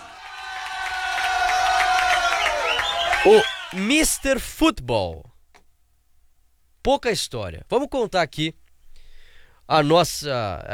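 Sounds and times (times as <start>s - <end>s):
crowd applauding: 0.0s - 4.3s
speech: 3.2s - 5.3s, 6.8s - 8.6s, 9.7s - 10.7s.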